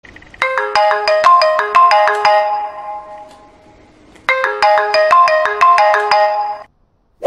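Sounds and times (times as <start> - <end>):
iPhone 3G marimba ringtone: 0.4 - 3.7, 4.3 - 6.7.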